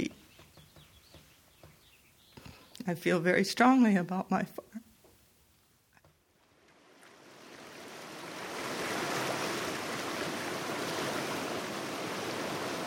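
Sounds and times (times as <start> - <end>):
speech: 2.9 - 4.8
river water rushing: 6.6 - 12.8.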